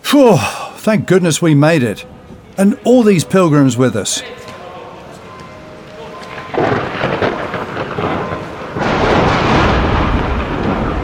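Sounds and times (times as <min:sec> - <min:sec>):
speech: 0:00.1 - 0:04.5
loud thunder crack from a nearby lightning strike with sustained rumble: 0:06.3 - 0:11.0.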